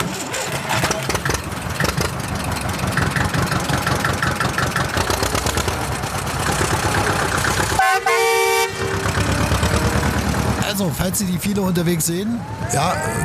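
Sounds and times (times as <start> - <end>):
tractor diesel engine cranking and chugging: 0.0 - 12.4
tractor horn blaring: 6.8 - 10.6
speech: 11.1 - 13.2.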